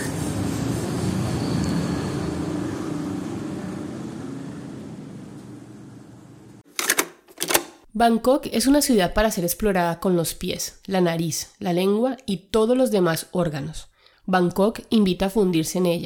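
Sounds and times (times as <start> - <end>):
city street noise in Bangkok: 0.0 - 6.6
low traffic rumble: 0.0 - 6.6
sharp mechanical clicks: 6.7 - 7.8
speech: 8.0 - 16.0.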